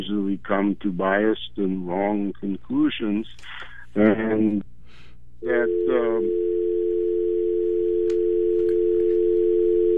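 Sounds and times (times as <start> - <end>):
speech: 0.0 - 4.7, 5.4 - 6.7
telephone dial tone over a call-in line: 5.7 - 9.9.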